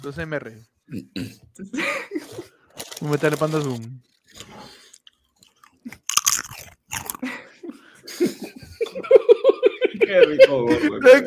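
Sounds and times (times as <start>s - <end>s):
speech: 0.0s - 4.7s, 10.1s - 11.2s
person giggling: 1.6s - 2.5s, 7.2s - 11.2s
crunchy chewing: 2.7s - 7.2s.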